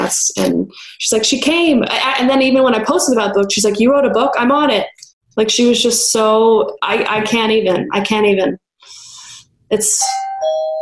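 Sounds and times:
speech: 0.1s - 9.0s, 9.7s - 10.8s
electronic doorbell chime: 10.0s - 10.8s.

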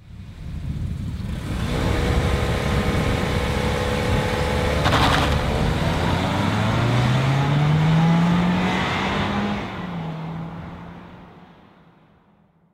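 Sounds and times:
four-cylinder car engine revving: 1.2s - 11.4s.

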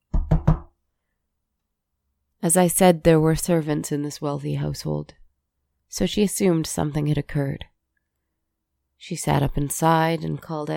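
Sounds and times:
knocking on a bedroom door: 0.1s - 0.7s
speech: 2.4s - 5.2s, 5.9s - 7.7s, 9.0s - 10.7s.

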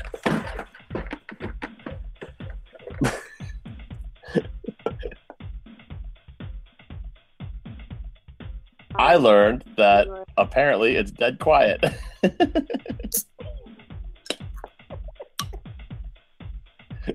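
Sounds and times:
laughter: 2.7s - 3.5s, 4.2s - 5.4s, 11.6s - 13.7s
person choking coughs after beer went down the wrong way: 3.0s - 3.5s, 4.3s - 5.2s
speech: 9.1s - 13.3s.

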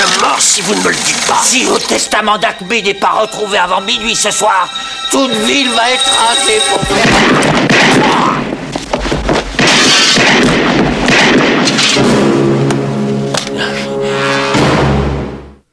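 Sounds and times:
dense busy film soundtrack: 0.0s - 15.7s
speech: 0.6s - 8.5s
gunshots from a big pistol in a film scene: 9.6s - 12.2s.

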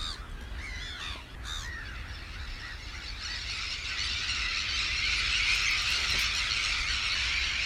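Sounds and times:
gulls and terns calling and squabbling at Minsmere: 0.0s - 7.6s.

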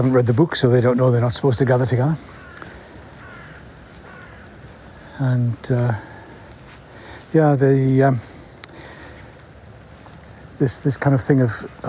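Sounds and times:
speech: 0.0s - 2.4s, 5.2s - 6.1s, 7.3s - 8.3s, 10.6s - 11.8s
large flock of rooks or crows cawing: 1.6s - 7.3s, 8.2s - 10.5s.

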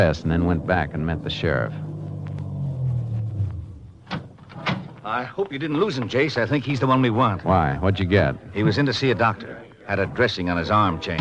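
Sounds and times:
speech: 0.0s - 1.9s, 5.0s - 11.1s
car engine rumbling as car pulls away from curb: 0.0s - 7.4s
mechanical clunk: 4.0s - 5.0s.

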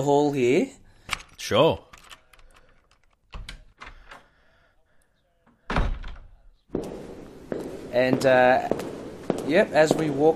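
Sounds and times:
speech: 0.0s - 0.8s, 1.4s - 1.9s, 8.0s - 8.8s, 9.5s - 10.3s
mansion room door opening and shutting with heavy wooden thunks and clatters: 5.7s - 6.4s.

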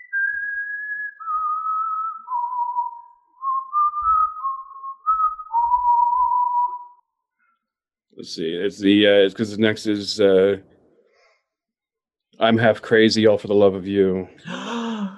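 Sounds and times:
person whistling a slow melody: 0.0s - 7.0s
speech: 8.2s - 10.7s, 12.4s - 14.6s.

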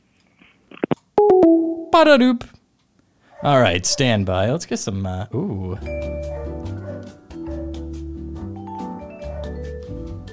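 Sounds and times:
phone call hang-up tone of two short electronic blips: 1.2s - 2.0s
speech: 2.0s - 2.5s, 3.4s - 6.8s.

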